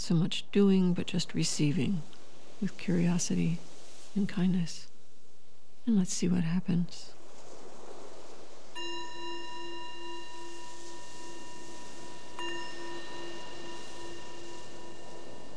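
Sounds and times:
speech: 0.0s - 4.9s, 5.8s - 7.2s
meditation bell struck during a guided meditation: 8.8s - 15.5s.

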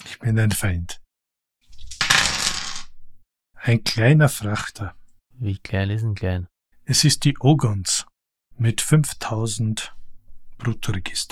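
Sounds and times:
speech: 0.2s - 1.0s, 3.6s - 10.0s, 10.6s - 11.2s
dice clattering across a hard tabletop: 1.7s - 3.0s.

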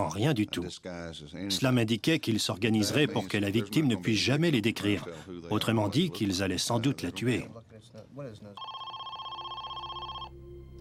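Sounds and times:
speech: 0.1s - 8.9s
telephone ringing with electronic trill: 8.6s - 10.7s.

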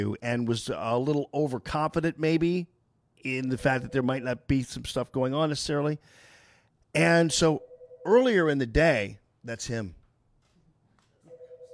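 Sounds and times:
speech: 0.0s - 6.3s, 6.9s - 10.0s
telephone ringing with warbling electronic tone: 7.3s - 8.4s, 11.3s - 11.7s.

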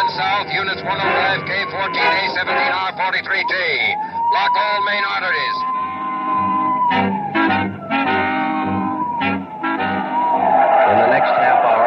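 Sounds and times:
police cars in a dragnet speeding: 0.0s - 11.8s
speech: 0.4s - 5.8s
tires squealing in a long wavering skid: 9.2s - 11.8s.

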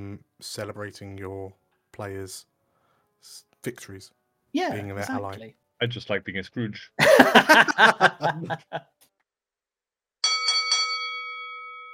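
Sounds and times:
speech: 0.1s - 2.5s, 3.2s - 8.9s
chuckling laughter in a tavern: 7.0s - 8.8s
handbell rung in a tavern to call last orders: 10.2s - 11.9s.

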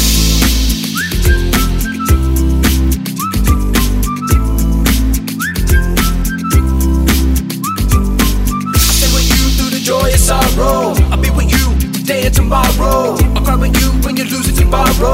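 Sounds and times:
short rising whistle toots: 0.0s - 10.1s
loud thumping music track with dense beat and bass: 0.0s - 15.1s.

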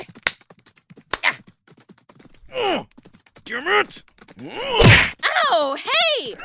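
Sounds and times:
speech: 3.5s - 6.4s
sharp punches landing in a fist fight: 4.6s - 5.2s.

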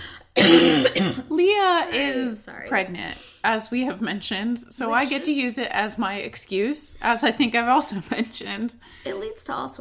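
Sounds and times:
person coughing: 0.0s - 1.3s
speech: 1.2s - 9.7s.

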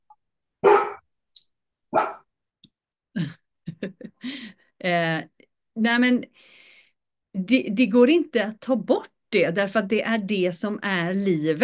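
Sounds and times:
dog barking: 0.6s - 1.0s, 1.9s - 2.3s
dog yapping: 0.6s - 1.0s, 1.9s - 2.2s
speech: 4.8s - 6.6s, 7.4s - 11.6s
person's voice: 7.4s - 11.6s.

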